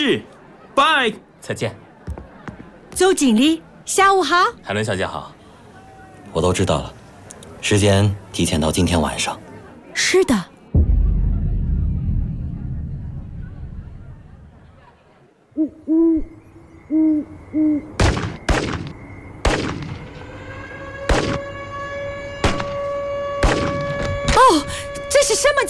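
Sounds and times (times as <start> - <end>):
speech: 0.0 - 1.8, 3.0 - 5.4, 6.3 - 7.0, 7.6 - 9.4, 10.0 - 10.9, 16.9 - 18.0, 24.4 - 25.6
low rumble: 10.7 - 14.7
gunshots: 18.0 - 20.0, 21.1 - 21.4, 22.4 - 22.8, 23.4 - 24.1.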